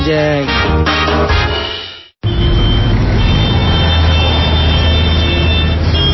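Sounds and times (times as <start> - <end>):
speech: 0.1 - 1.5
high-pitched reversing beep: 1.7 - 6.1
idling trucks and cars in a traffic jam: 2.2 - 6.1.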